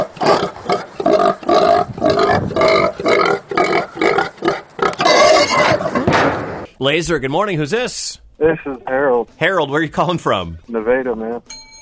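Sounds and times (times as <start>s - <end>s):
pigs oinking and grunting rhythmically to a tune: 0.0s - 6.1s
speech: 6.8s - 11.6s.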